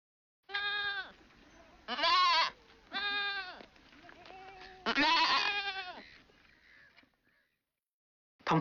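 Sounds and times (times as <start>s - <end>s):
goat bleating: 0.5s - 7.0s.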